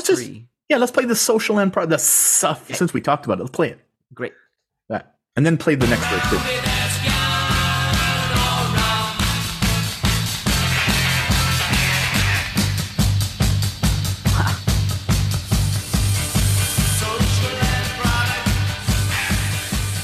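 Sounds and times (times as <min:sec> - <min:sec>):
speech: 0:00.0 - 0:06.7
choppy guitar sputtering in short rhythmic bursts: 0:05.8 - 0:20.0
loud garage rock song: 0:05.8 - 0:20.0.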